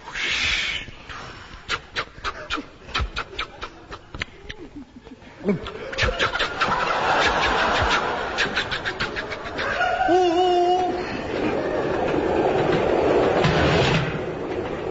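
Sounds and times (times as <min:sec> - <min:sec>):
laughter: 0:02.2 - 0:13.3
train running with rumble and rattle: 0:06.6 - 0:14.8.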